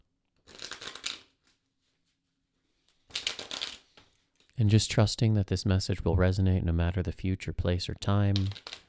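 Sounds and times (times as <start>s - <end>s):
tarot cards being shuffled: 0.4s - 1.7s, 2.8s - 4.5s, 8.3s - 8.8s
speech: 4.6s - 8.8s.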